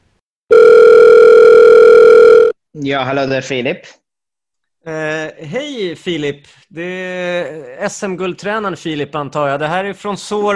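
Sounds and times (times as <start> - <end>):
telephone ringing tone from an outgoing call: 0.5 - 2.6
speech: 2.8 - 4.0, 4.8 - 10.5.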